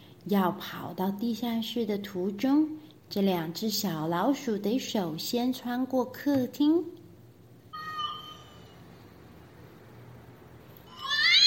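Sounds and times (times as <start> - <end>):
speech: 0.2 - 7.0
cat meowing: 10.9 - 11.4.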